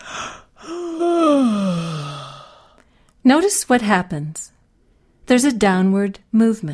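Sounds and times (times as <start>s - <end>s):
person yawning: 0.0s - 2.7s
speech: 3.3s - 4.6s, 5.3s - 6.7s.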